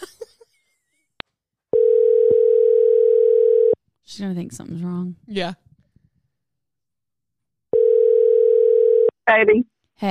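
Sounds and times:
telephone dial tone while placing a call back: 0:01.8 - 0:03.8, 0:07.8 - 0:09.1
speech: 0:04.2 - 0:05.6, 0:09.3 - 0:10.0.

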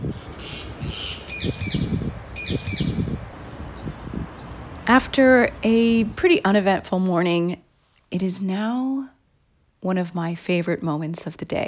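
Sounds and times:
large parakeets calling: 0:00.4 - 0:04.7
low outdoor rumble: 0:01.9 - 0:11.6
speech: 0:04.9 - 0:09.1, 0:09.8 - 0:11.6.

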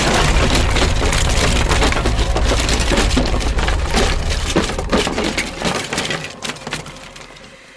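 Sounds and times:
deep rumble of collapsing floor: 0:00.0 - 0:07.3
wood splintering and cracking as a floor collapses: 0:00.0 - 0:07.6.

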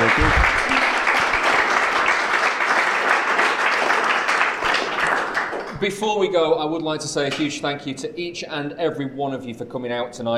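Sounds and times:
live audience applause: 0:00.0 - 0:05.8
speech: 0:05.8 - 0:10.3.

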